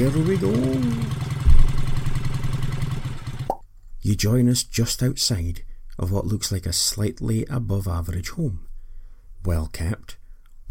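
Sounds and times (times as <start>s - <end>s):
speech: 0.0s - 1.3s, 4.0s - 8.7s, 9.4s - 10.6s
low rumbling engine revving and idling: 0.0s - 3.5s.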